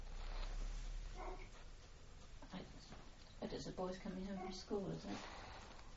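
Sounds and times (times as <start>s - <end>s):
low hum: 0.0s - 5.9s
dog barking faintly: 1.1s - 1.6s, 4.0s - 5.4s
speech: 3.6s - 5.6s.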